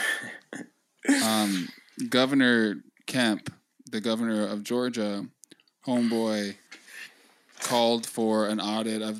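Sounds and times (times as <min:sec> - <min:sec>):
harsh person coughing: 0:00.0 - 0:01.8
speech: 0:01.2 - 0:06.7, 0:07.6 - 0:09.1.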